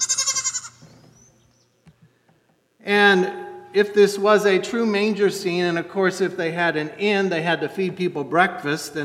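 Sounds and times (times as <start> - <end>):
goat bleating: 0.0 - 0.8
faint farmyard noises: 0.0 - 1.2
speech: 2.8 - 9.0.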